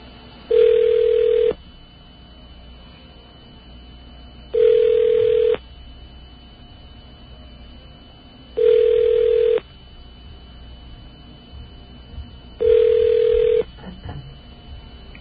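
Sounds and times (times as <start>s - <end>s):
telephone ringback tone heard through the line on an outgoing call: 0.5s - 1.6s, 4.5s - 5.6s, 8.5s - 9.6s, 12.6s - 13.7s.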